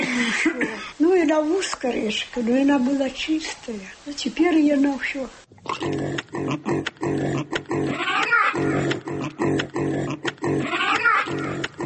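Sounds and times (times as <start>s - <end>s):
speech: 0.2s - 11.8s
pigs grunting at a pig-breeding complex: 5.6s - 11.8s.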